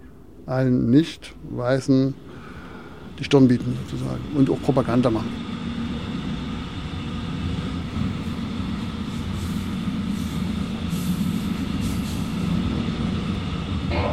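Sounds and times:
train rumbling with rattling wheels arriving at a station: 0.0s - 14.1s
speech: 0.5s - 2.3s, 3.2s - 5.5s.

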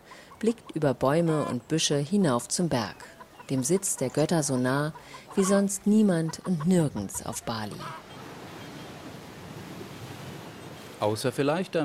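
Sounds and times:
speech: 0.4s - 8.1s, 11.0s - 11.8s
surf from the Indian Ocean breaking below cliffs: 8.2s - 11.4s.

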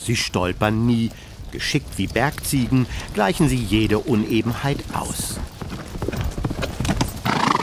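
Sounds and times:
speech: 0.0s - 5.5s
horses with riders galloping across a field of soft uneven ground: 0.0s - 7.6s
horse whinny or snort: 7.2s - 7.6s.

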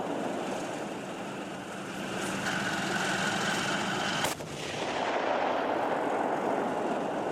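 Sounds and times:
battle tank engine and mechanical roar: 0.0s - 7.3s
battle tank firing a live round: 4.2s - 6.9s.

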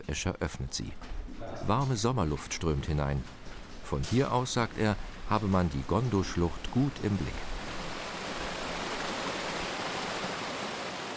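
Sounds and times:
speech: 0.0s - 7.6s
rushing mountain river: 2.6s - 11.1s
waterfall: 3.4s - 11.1s.

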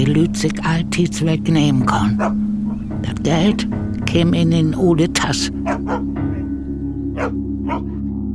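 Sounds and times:
speech: 0.0s - 6.1s
dog barking: 2.2s - 2.8s, 5.6s - 6.4s, 7.2s - 8.0s.

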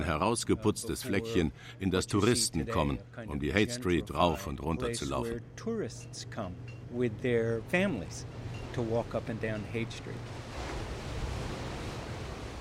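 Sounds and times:
speech: 0.0s - 10.7s
ocean surf breaking on sandy beach at Big Sur: 8.0s - 12.5s.

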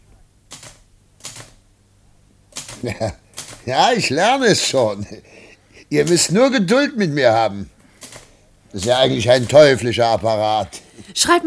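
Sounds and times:
faint low hum: 0.0s - 11.4s
typewriter keystrokes: 0.5s - 1.6s, 2.5s - 3.8s, 8.0s - 9.7s
speech: 2.8s - 7.8s, 8.7s - 11.4s.

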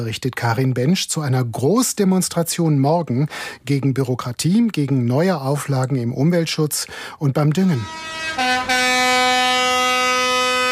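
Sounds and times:
speech: 0.0s - 9.0s
heavy vehicle horn honking in a tractor convoy: 7.7s - 10.6s.

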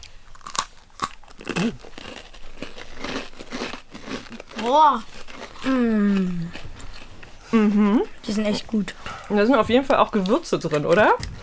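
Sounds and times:
biting into crunchy spiced Christmas cookie: 0.0s - 7.1s
chewing spiced Christmas cookie with crumbly crunching: 0.0s - 11.4s
speech: 1.5s - 2.0s, 4.6s - 6.6s, 7.5s - 11.3s.

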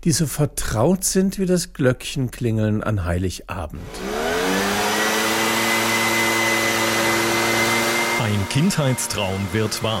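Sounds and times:
speech: 0.0s - 4.2s, 8.3s - 9.9s
leaf blower engine whining with a rush of air: 3.8s - 9.9s.

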